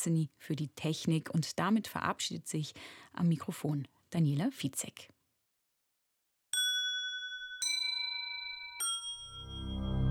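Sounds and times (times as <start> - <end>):
speech: 0.0 - 5.2
bright metallic bell strikes: 6.6 - 10.0.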